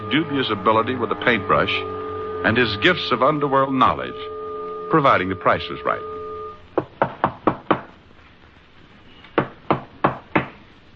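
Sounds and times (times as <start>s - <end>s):
speech: 0.1s - 6.1s
sharp firm knocking on a door: 6.8s - 8.0s, 9.4s - 10.6s.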